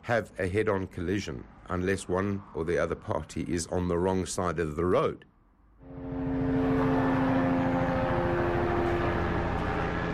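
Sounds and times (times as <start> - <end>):
speech: 0.0 - 5.3
police helicopter flying overhead above a highway pileup in Johannesburg South Africa: 5.9 - 10.1.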